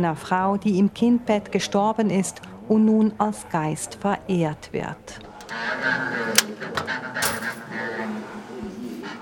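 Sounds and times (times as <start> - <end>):
speech: 0.0 - 7.0
coins dropped into a machine coin slot: 7.2 - 7.7.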